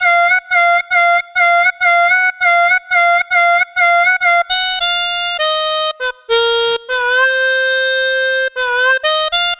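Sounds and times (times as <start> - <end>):
blues harmonica in funk style: 0.0 - 9.5.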